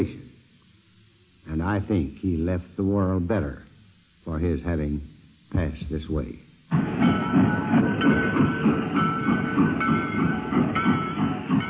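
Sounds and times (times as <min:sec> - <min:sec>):
speech: 0:01.6 - 0:08.2
train rolling along rails: 0:06.6 - 0:11.6.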